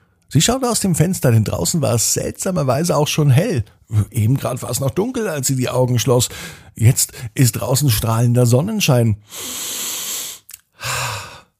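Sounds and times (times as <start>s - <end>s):
speech: 0.3s - 9.7s
long deep inhale: 6.3s - 7.3s, 9.2s - 11.5s
breathy exhale: 9.3s - 11.5s.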